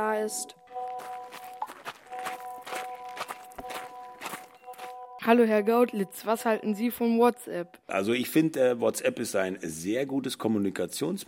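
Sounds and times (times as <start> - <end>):
speech: 0.0 - 0.6, 5.2 - 11.2
footsteps of someone walking over to a school: 0.6 - 5.2.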